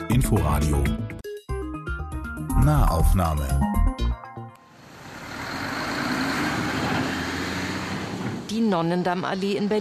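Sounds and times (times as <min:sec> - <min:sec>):
speech: 0:00.1 - 0:01.0, 0:02.6 - 0:03.7, 0:08.5 - 0:09.7
dense road traffic of trucks and cars rumbling on multi-lane street: 0:04.7 - 0:09.7.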